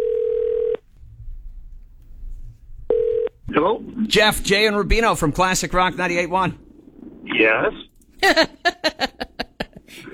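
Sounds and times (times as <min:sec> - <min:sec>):
telephone dial tone on an outgoing phone call: 0:00.0 - 0:00.8, 0:02.9 - 0:03.3
faint low rumble: 0:00.8 - 0:03.0, 0:05.8 - 0:07.9
speech: 0:03.6 - 0:06.6, 0:07.4 - 0:08.6, 0:09.9 - 0:10.1
laughter: 0:08.2 - 0:10.1.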